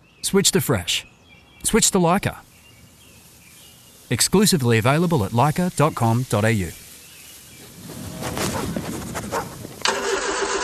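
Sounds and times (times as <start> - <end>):
speech: 0.2 - 2.5, 4.1 - 6.8
ute engine cranking and running: 9.8 - 10.6.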